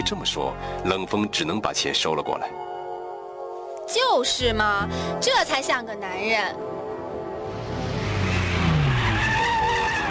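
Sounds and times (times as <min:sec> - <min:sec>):
speech: 0:00.0 - 0:02.7, 0:03.9 - 0:06.8
car engine roaring: 0:07.4 - 0:10.0
car tires squealing in a long skid turning a corner: 0:07.7 - 0:10.0.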